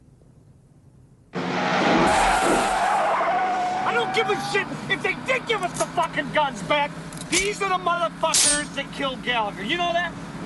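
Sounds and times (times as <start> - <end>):
car engine roaring speeding out of a garage: 1.3 - 10.4
car tires squealing speeding out of a garage: 1.4 - 8.8
speech: 4.2 - 10.2.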